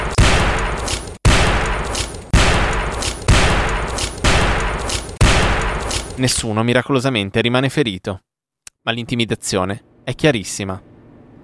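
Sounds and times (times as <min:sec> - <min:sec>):
shotgun blasts on a crowded video set in Brooklyn: 0:00.0 - 0:06.2
speech: 0:06.2 - 0:10.9.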